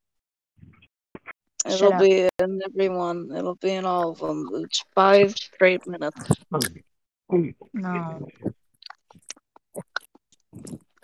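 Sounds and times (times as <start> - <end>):
speech: 1.7 - 8.6
wet ASMR mouth smacks and clicks: 6.1 - 6.8, 7.4 - 11.0
ASMR mouth slurping: 7.4 - 11.0.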